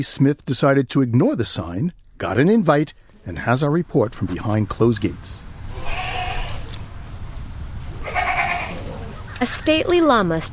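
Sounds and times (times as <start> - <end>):
speech: 0.0 - 5.5, 9.4 - 10.5
steady low outdoor rumble: 0.0 - 10.5
goats or sheep bleating: 5.7 - 6.8, 8.0 - 9.1.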